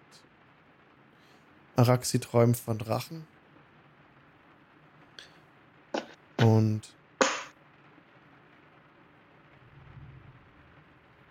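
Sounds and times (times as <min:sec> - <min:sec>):
speech: 0:01.8 - 0:03.4, 0:06.6 - 0:07.0
sharp crack of thunder: 0:09.5 - 0:11.2.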